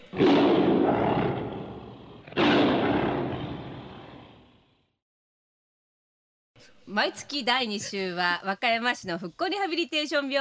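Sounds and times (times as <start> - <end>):
loud deep tiger roars: 0.0 - 4.9
speech: 6.9 - 10.3.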